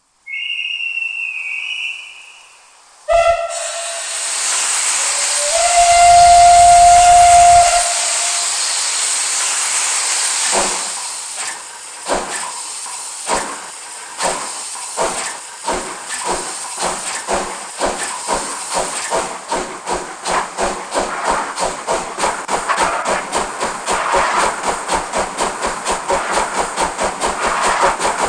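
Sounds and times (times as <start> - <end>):
OEBB 52 steam locomotive: 0.0 - 28.2.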